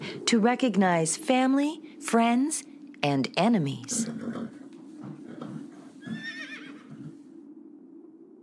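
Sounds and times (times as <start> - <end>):
speech: 0.3 - 4.6
horse whinnying: 5.2 - 7.2.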